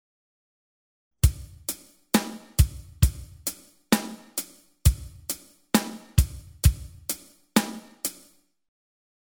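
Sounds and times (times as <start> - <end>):
drum kit playing a basic eighth-note rock beat with hi-hat: 1.2 - 8.4.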